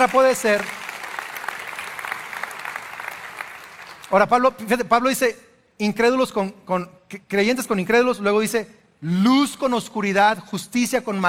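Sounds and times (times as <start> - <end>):
speech: 0.0 - 0.8, 4.1 - 11.2
congregation applauding during a sermon: 0.0 - 4.2.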